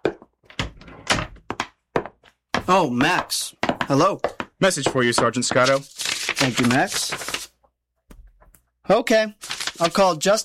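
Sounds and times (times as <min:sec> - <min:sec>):
door being opened in a radio drama: 0:00.4 - 0:01.5
speech: 0:02.7 - 0:07.4, 0:08.9 - 0:10.4.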